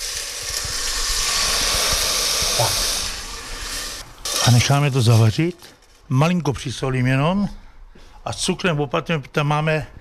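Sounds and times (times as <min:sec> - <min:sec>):
game broth poured into a hot pan hissing with steam: 0:00.0 - 0:04.6
speech: 0:02.6 - 0:02.9, 0:04.4 - 0:07.6, 0:08.2 - 0:09.9.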